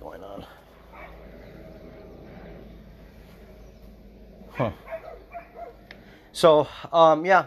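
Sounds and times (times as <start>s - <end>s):
low hum: 0.0s - 7.4s
dogs barking: 0.8s - 1.4s, 4.5s - 6.0s
speech: 4.6s - 4.9s, 6.4s - 7.4s.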